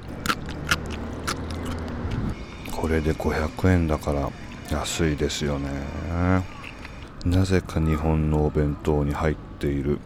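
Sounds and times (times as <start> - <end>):
crisp bites into pickled daikon radish during a meal: 0.0 - 2.3
low steady rumble: 0.0 - 10.0
speech: 2.8 - 6.6, 7.2 - 10.0.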